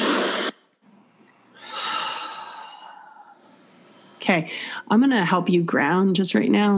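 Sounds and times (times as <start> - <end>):
deep breath in and out during a guided breathing exercise: 0.0 - 4.9
speech: 4.2 - 6.7.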